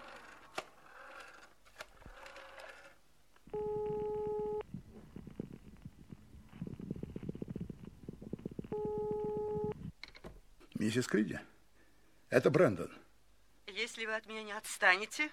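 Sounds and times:
rapid low clicking of telephone dialing: 0:03.4 - 0:10.2
telephone line electronic ringing tone: 0:03.5 - 0:04.6, 0:08.7 - 0:09.8
speech: 0:10.9 - 0:11.5, 0:12.3 - 0:13.0, 0:13.8 - 0:15.3.

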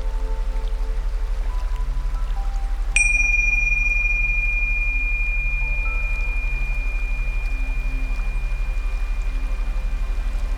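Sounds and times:
steady low hum: 0:00.0 - 0:10.5
single bell ringing: 0:03.0 - 0:10.5.

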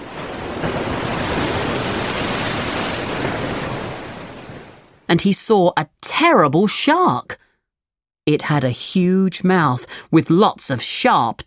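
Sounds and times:
big ocean wave splashing: 0:00.0 - 0:05.1
speech: 0:05.1 - 0:07.4, 0:08.3 - 0:11.4.

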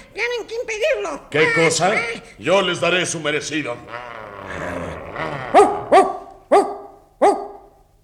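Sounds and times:
speech: 0:00.2 - 0:05.6
low growl-like rumble of dog: 0:03.3 - 0:06.4
dog barking: 0:05.3 - 0:07.8.

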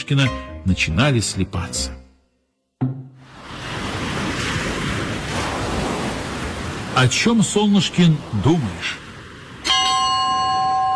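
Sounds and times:
speech: 0:00.1 - 0:02.0, 0:07.0 - 0:09.0
ocean waves surging: 0:02.8 - 0:10.9.

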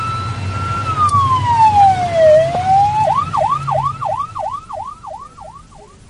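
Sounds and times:
emergency vehicle siren wailing and yelping: 0:00.0 - 0:06.0
low rumble of engine and traffic noise: 0:00.0 - 0:06.0.

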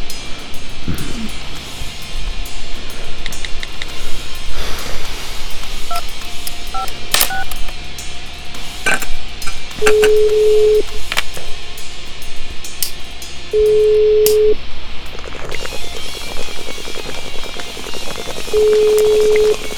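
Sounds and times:
electronic telephone keypad tones dialing a number: 0:06.8 - 0:07.5, 0:09.8 - 0:10.8, 0:13.6 - 0:14.6, 0:18.6 - 0:19.6
longer steady telephone tone: 0:09.8 - 0:11.0, 0:13.5 - 0:14.6, 0:18.5 - 0:19.7.

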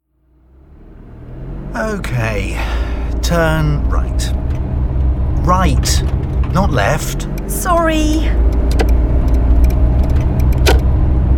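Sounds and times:
car engine rumble heard from inside a car: 0:00.0 - 0:11.3
speech: 0:01.7 - 0:04.4, 0:05.5 - 0:08.9.

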